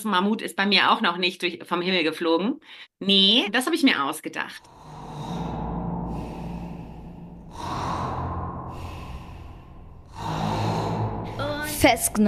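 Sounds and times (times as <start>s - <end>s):
speech: 0.0s - 5.3s, 11.8s - 12.2s
person imitating loud snoring of a sleeping policeman: 4.6s - 11.7s.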